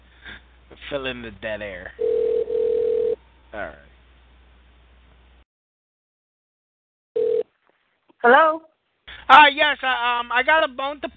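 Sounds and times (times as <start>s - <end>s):
speech: 0.8s - 2.0s, 3.5s - 3.9s, 8.2s - 8.7s, 9.3s - 11.1s
single steady telephone ring tone through a handset: 2.0s - 3.2s, 7.2s - 7.5s.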